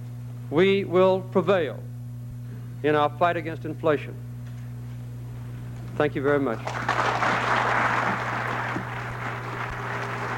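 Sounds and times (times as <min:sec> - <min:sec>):
low electrical hum: 0:00.0 - 0:10.3
speech: 0:00.5 - 0:01.9, 0:02.8 - 0:04.3, 0:06.0 - 0:07.2
large crowd applauding after a speech: 0:06.6 - 0:10.3.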